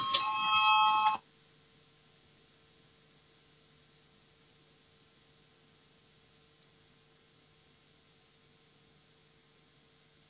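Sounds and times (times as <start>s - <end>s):
electronic voting bell ringing in a parliament chamber: 0.0s - 1.2s.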